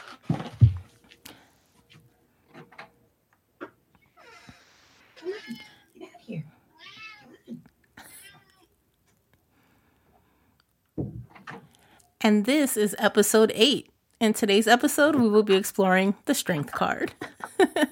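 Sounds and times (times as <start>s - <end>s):
cat meowing behind bedroom door: 5.2s - 5.9s, 6.8s - 7.4s
speech: 12.2s - 17.9s.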